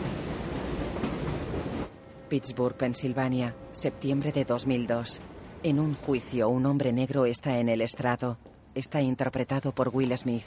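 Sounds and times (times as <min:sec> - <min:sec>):
train rumbling past a factory by day: 0:00.0 - 0:07.4
speech: 0:02.3 - 0:10.4.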